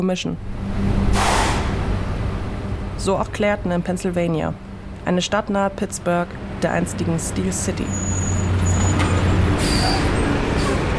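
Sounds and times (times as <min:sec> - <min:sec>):
speech: 0:00.0 - 0:01.3, 0:03.0 - 0:08.2
freight train loaded with coal passing through Clairton, Pennsylvania: 0:00.4 - 0:10.9
high squealing tones of freight train: 0:07.8 - 0:10.8.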